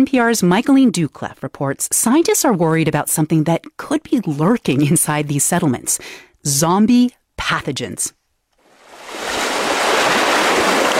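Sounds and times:
speech: 0:00.0 - 0:08.2
ocean surf roaring below an ocean bluff: 0:08.7 - 0:10.9.

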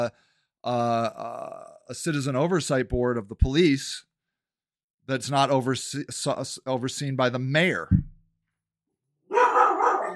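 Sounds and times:
speech: 0:00.0 - 0:04.1, 0:05.1 - 0:08.1
dog barking loudly: 0:09.3 - 0:10.1.

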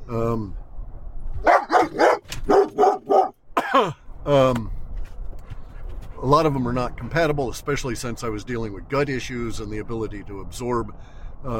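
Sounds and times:
speech: 0:00.1 - 0:00.6, 0:03.8 - 0:04.8, 0:06.2 - 0:11.5
dog barking: 0:01.4 - 0:03.4.

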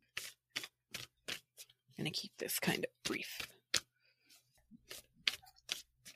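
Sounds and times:
tarot cards being shuffled: 0:00.1 - 0:01.8, 0:03.0 - 0:06.1
speech: 0:02.0 - 0:03.5.

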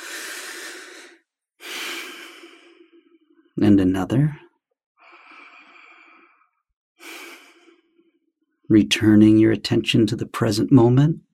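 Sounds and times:
long deep breath during guided meditation: 0:00.0 - 0:03.4, 0:05.0 - 0:08.2
speech: 0:03.6 - 0:04.4, 0:08.7 - 0:11.3.

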